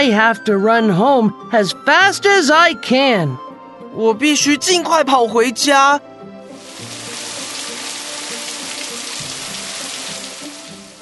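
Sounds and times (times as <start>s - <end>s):
speech: 0.0s - 3.4s, 4.0s - 6.1s
heavy rain pouring: 6.5s - 11.0s.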